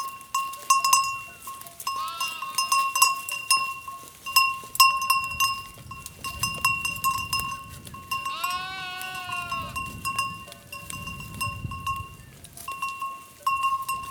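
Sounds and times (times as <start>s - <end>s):
clinking sheep bells: 0.0s - 14.1s
sheep bleating in Coleja, Portugal, by the Douro River: 1.8s - 2.8s, 8.1s - 9.9s.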